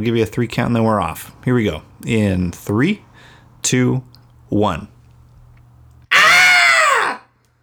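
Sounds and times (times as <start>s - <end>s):
speech: 0.0s - 4.9s
human cathartic scream: 6.1s - 7.3s.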